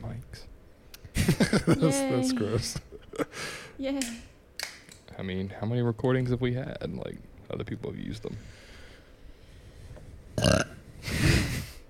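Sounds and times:
laughter: 0:01.2 - 0:03.3
speech: 0:01.3 - 0:04.3, 0:05.2 - 0:08.6
burps during a belching contest: 0:10.4 - 0:10.8.

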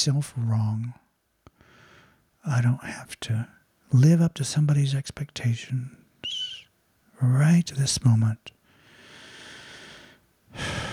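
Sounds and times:
speech: 0:00.0 - 0:01.0, 0:02.4 - 0:06.0, 0:07.2 - 0:08.6
person taking a slow breath: 0:01.6 - 0:02.3, 0:08.6 - 0:10.9.

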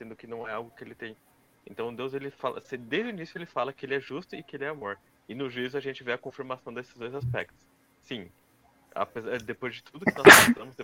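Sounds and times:
speech: 0:00.0 - 0:08.4, 0:09.0 - 0:10.8
single sharp loud sneeze: 0:10.1 - 0:10.6.

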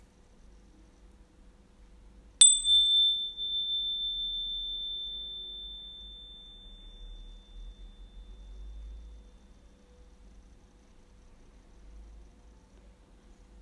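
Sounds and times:
faint low hum: 0:00.0 - 0:13.6
single bell strike ringing: 0:02.4 - 0:08.6.

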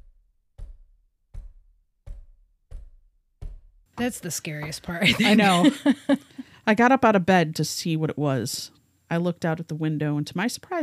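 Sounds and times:
slow heavy knocks: 0:00.0 - 0:05.6
speech: 0:04.0 - 0:10.8
laughter: 0:04.8 - 0:06.4.

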